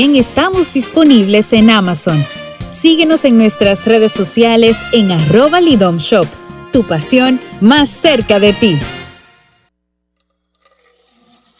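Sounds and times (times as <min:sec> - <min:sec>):
speech: 0:00.0 - 0:09.0
scattered water drips and gurgles: 0:10.2 - 0:11.5.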